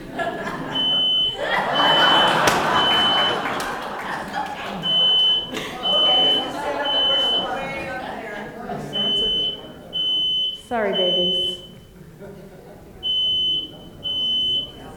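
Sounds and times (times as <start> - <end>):
laughter: 0.0 - 10.4, 11.4 - 14.9
people talking: 0.0 - 14.9
smoke alarm beeping in short piercing tones: 0.8 - 3.4, 4.8 - 7.6, 8.9 - 11.9, 13.0 - 14.9.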